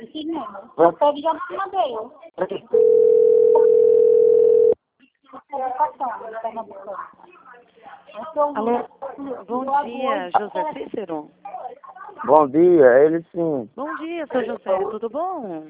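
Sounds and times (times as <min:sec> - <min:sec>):
speech: 0:00.4 - 0:03.7, 0:05.3 - 0:07.3, 0:08.2 - 0:15.6
telephone line tone during an outgoing call: 0:02.7 - 0:04.8.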